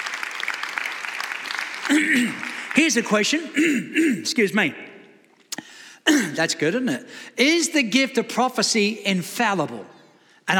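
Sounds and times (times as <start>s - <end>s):
church congregation applauding after a sermon point: 0.0s - 3.7s
speech: 1.9s - 4.9s, 6.4s - 10.5s.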